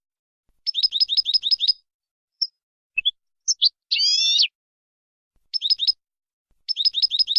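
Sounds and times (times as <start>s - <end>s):
European goldfinch song in clean song style: 0.6s - 4.6s, 5.4s - 6.0s, 6.6s - 7.3s.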